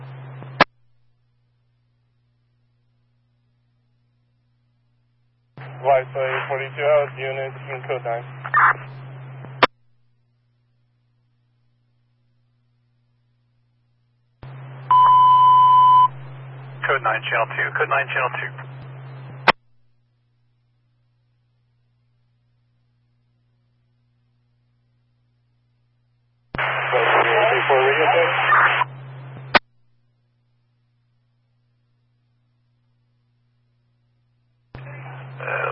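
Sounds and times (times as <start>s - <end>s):
steady low electrical hum: 0.0s - 35.7s
bursts of hissing radio static: 5.6s - 9.7s, 15.9s - 19.6s, 26.6s - 29.6s, 34.8s - 35.7s
sharp radio squelch click: 5.6s - 9.7s, 26.6s - 29.6s
speech: 5.8s - 9.0s, 17.0s - 18.8s.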